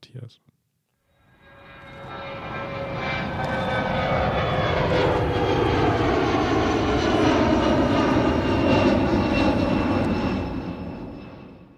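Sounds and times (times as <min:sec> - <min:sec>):
speech: 0:00.1 - 0:00.5
small airplane engine droning: 0:01.1 - 0:11.7.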